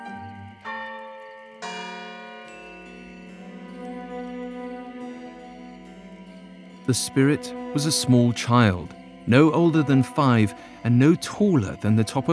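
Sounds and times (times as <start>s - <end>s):
town square bells ringing noon: 0.0s - 12.3s
speech: 6.9s - 12.3s.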